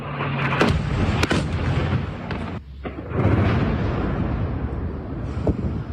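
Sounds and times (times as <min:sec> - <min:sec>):
continuous rolling rumble of bomb strikes: 0:00.0 - 0:05.9
heavy explosions from guided aerial bomb strikes: 0:00.0 - 0:05.9.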